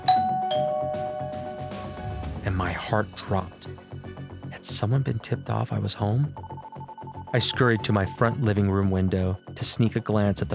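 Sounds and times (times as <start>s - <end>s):
doorbell chiming: 0.0s - 2.3s
speech: 2.5s - 3.8s, 4.6s - 6.5s, 7.3s - 10.5s.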